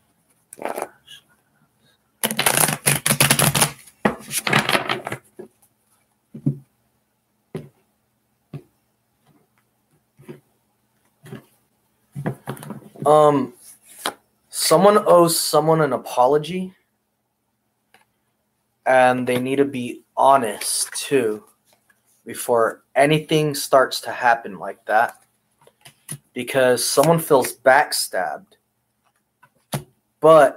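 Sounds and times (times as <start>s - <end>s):
deck of tarot cards being riffle shuffled: 0.6s - 0.9s, 2.2s - 5.3s
speech: 13.1s - 13.6s, 14.7s - 16.8s, 18.9s - 21.5s, 22.3s - 25.2s, 26.4s - 28.6s, 30.2s - 30.5s.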